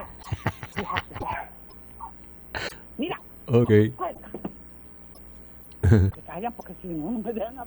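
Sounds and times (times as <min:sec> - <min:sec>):
laughter: 0:00.0 - 0:01.5, 0:05.8 - 0:06.2
small female dog yapping and yelping: 0:00.8 - 0:02.1
speech: 0:03.5 - 0:04.0, 0:05.9 - 0:07.6.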